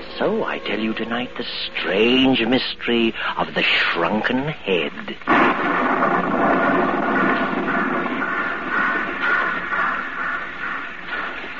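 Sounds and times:
speech: 0.2 - 6.3
rolling thunder at a small suburban railroad station: 5.3 - 11.5.

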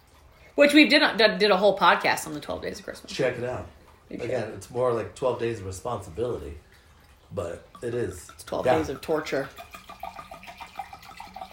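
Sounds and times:
speech: 0.6 - 6.7, 7.3 - 9.7
liquid pouring into a glass: 3.8 - 11.5.

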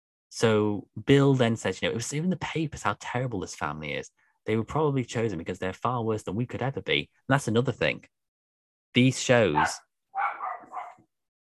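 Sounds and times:
speech: 0.3 - 8.2, 8.9 - 9.9
dog barking: 9.5 - 11.0.

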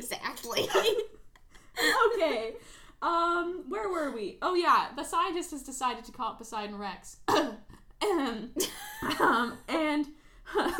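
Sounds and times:
speech: 0.5 - 1.1, 2.2 - 10.7
person coughing harshly: 7.3 - 8.3.

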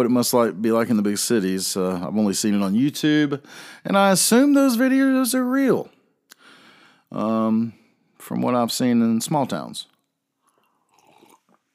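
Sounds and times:
speech: 0.0 - 6.0, 7.1 - 9.9
slurping sip of coffee at a microphone: 10.4 - 11.7
swallow: 10.4 - 11.7.

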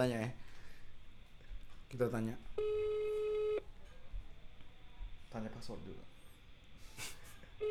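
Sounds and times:
speech: 0.0 - 0.4, 1.9 - 2.8, 5.3 - 6.2, 6.8 - 7.6
ringback tone on an outgoing telephone call: 2.6 - 3.6.

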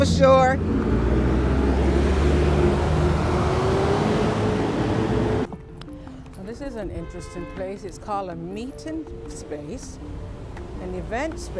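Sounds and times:
speech: 0.0 - 1.0, 6.6 - 11.5
street traffic of passing vehicles: 0.0 - 11.5.

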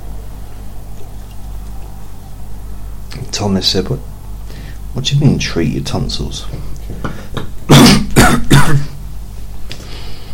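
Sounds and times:
speech: 3.3 - 4.1, 5.0 - 7.2
person clearing throat: 7.7 - 9.0
raspy coughs: 7.7 - 9.0.

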